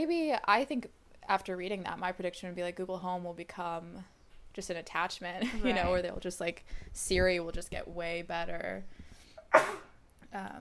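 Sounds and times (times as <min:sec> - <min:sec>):
speech: 0:00.0 - 0:10.5
person sneezing: 0:09.4 - 0:10.0.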